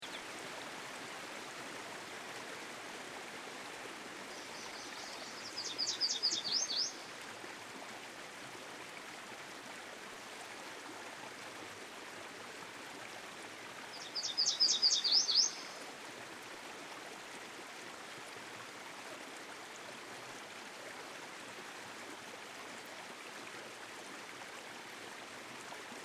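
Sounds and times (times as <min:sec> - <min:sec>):
stream flowing: 0:00.0 - 0:26.0
Yellow Warbler singing: 0:04.4 - 0:07.0, 0:14.0 - 0:15.8.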